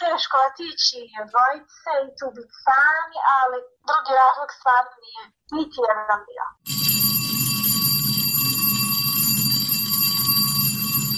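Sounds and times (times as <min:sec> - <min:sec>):
speech: 0:00.2 - 0:07.1
school bell ringing in Bosnia and Herzegovina: 0:06.7 - 0:11.1.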